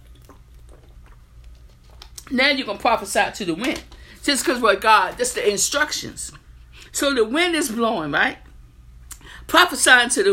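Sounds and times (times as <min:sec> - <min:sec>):
person drinking water: 0:00.0 - 0:02.3
steady low hum: 0:00.0 - 0:10.3
speech: 0:02.3 - 0:08.4, 0:09.5 - 0:10.3.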